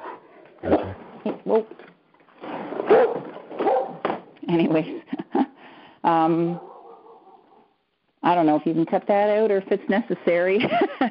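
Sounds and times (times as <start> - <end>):
dog barking: 0.6 - 1.0, 2.8 - 4.0, 6.5 - 7.7
speech: 0.6 - 1.9, 4.5 - 5.0, 6.0 - 6.7, 8.3 - 11.0
laughter: 4.7 - 5.6, 10.6 - 11.0.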